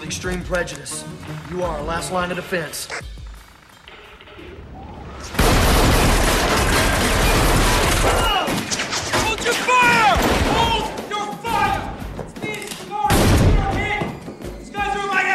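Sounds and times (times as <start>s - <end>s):
speech: 0.1s - 3.1s
scattered gunshots: 5.3s - 11.0s, 13.1s - 14.0s
rapid gunfire in a stairwell fired down into a lift: 5.4s - 9.1s
raised shouting voices: 7.3s - 12.0s.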